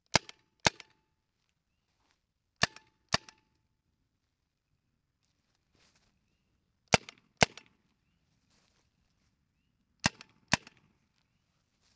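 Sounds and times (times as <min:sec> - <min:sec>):
dry short barrel carbine gunshots: 0:10.0 - 0:10.8.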